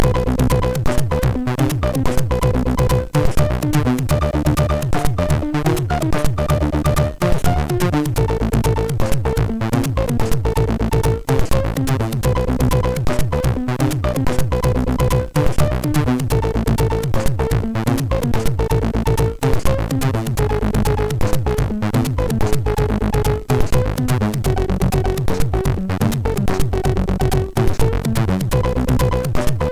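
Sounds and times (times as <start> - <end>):
chiptune sound from a MOS6581R3 SID chip: 0.0 - 29.6.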